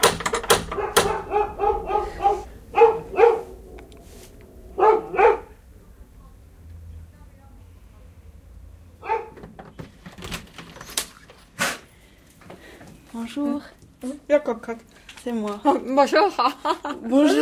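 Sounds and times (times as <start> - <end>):
female dog barking excitedly: 0.6 - 3.7, 4.7 - 5.7, 9.0 - 9.4
speech: 13.2 - 17.4.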